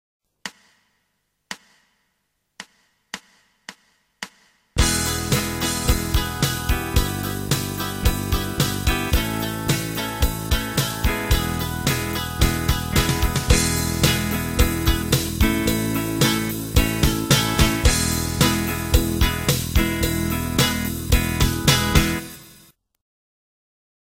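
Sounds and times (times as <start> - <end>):
guitar backing playing E semibreves: 4.8 - 22.6.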